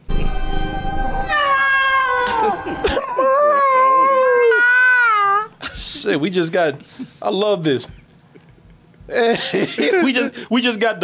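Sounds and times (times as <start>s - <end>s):
human voice imitating a cat meow for a CG animated scene: 1.3s - 5.5s
speech: 6.1s - 8.0s, 9.1s - 11.0s.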